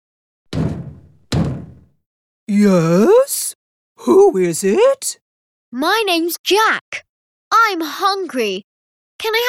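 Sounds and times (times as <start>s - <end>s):
heavy booming knocks on a very big wooden castle door: 0.5s - 1.9s
speech: 2.6s - 3.4s, 4.0s - 9.4s.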